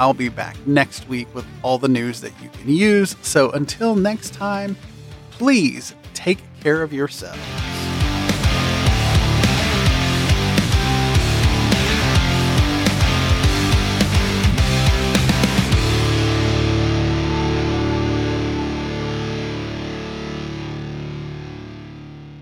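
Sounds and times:
speech: 0.0 - 7.7
steady punchy drums: 7.4 - 16.8
heavy distorted guitar in instrumental outro music: 7.4 - 22.3.

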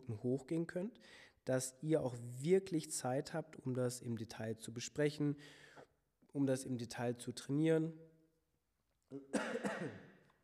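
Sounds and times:
speech: 0.1 - 8.1, 9.1 - 10.1
harsh cough: 9.1 - 10.2.

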